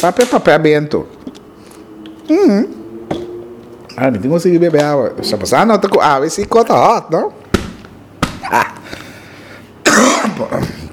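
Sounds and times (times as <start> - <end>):
speech: 0.0 - 1.2, 2.3 - 3.2, 4.0 - 7.4, 8.4 - 9.0, 10.4 - 10.8
person clearing throat: 9.8 - 10.9
person coughing: 9.8 - 10.9.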